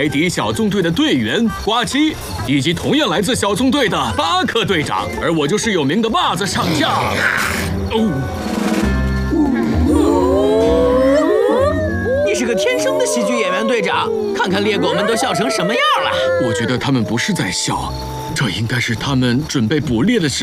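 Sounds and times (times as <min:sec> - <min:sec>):
speech: 0:00.0 - 0:08.6, 0:12.4 - 0:20.4
pack of hunting dogs yelping and howling before a hunt: 0:09.4 - 0:17.8.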